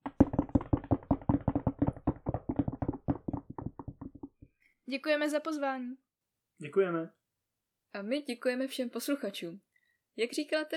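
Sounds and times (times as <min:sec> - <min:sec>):
several people knocking knuckles on a table instead of applause: 0:00.0 - 0:04.6
speech: 0:04.9 - 0:06.0, 0:06.6 - 0:07.2, 0:07.9 - 0:10.7.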